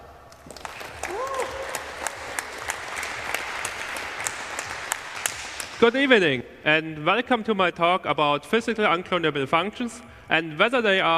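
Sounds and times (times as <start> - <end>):
audience applause welcoming a speaker: 0.0 - 5.8
faint voice or whoop: 1.0 - 2.2
speech: 5.8 - 11.1.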